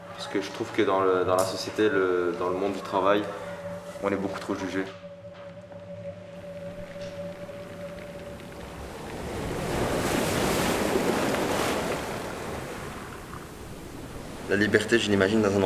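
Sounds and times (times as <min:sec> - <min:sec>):
blustery wind: 0:00.0 - 0:15.6
ocean waves: 0:00.0 - 0:15.6
speech: 0:00.2 - 0:05.0, 0:14.5 - 0:15.6.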